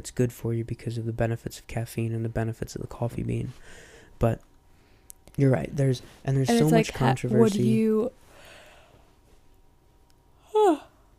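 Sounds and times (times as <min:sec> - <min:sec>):
speech: 0:00.0 - 0:04.5, 0:05.4 - 0:08.2
person yawning: 0:10.4 - 0:11.0.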